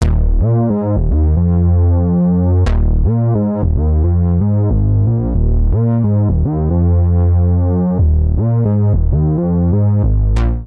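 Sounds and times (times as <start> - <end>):
resonant bassline in F minor at 90 bpm: 0.0 - 10.6.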